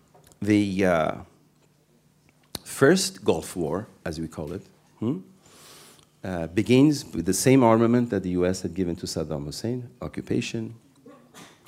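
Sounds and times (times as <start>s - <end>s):
speech: 0.4s - 1.3s, 2.8s - 5.3s, 6.2s - 10.8s
person sneezing: 11.0s - 11.6s.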